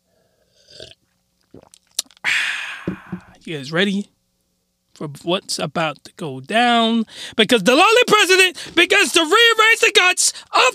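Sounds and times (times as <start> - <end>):
person sipping and swallowing water: 0.6 - 3.4
long loud breathy exhale: 2.3 - 3.4
speech: 2.9 - 4.2, 5.0 - 10.7.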